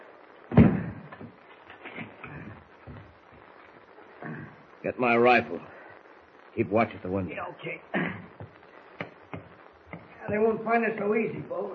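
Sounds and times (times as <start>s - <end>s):
door slamming shut with a heavy thud: 0.5s - 1.0s
speech: 4.8s - 5.8s, 6.6s - 8.0s, 10.3s - 11.7s.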